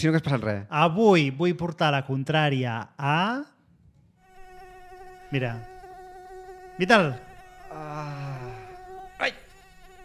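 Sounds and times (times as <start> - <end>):
speech: 0.0 - 3.5, 5.3 - 5.7, 6.8 - 8.2, 9.2 - 9.4
voice imitating a summer-night mosquito buzzing: 4.2 - 10.0.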